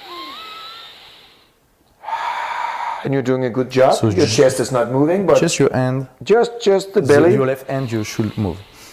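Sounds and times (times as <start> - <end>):
person breathing during a belly breathing exercise: 0.1 - 3.1, 8.0 - 8.9
speech: 3.0 - 8.7.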